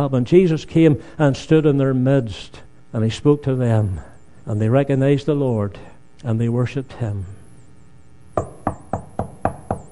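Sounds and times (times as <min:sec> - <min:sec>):
speech: 0:00.0 - 0:07.4, 0:08.4 - 0:08.8
firm knocks on a door: 0:08.4 - 0:09.8.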